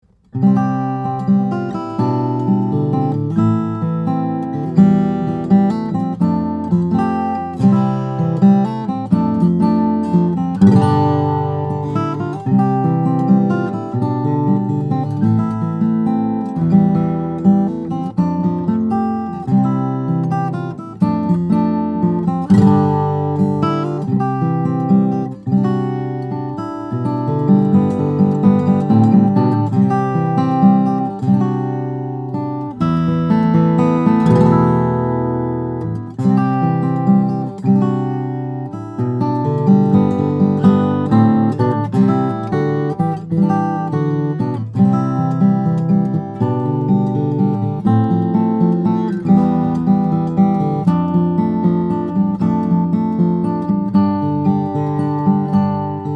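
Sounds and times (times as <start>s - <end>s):
Grand Concert flattop steel-string acoustic guitar of East Indian rosewood and cedar: 0.0s - 56.1s.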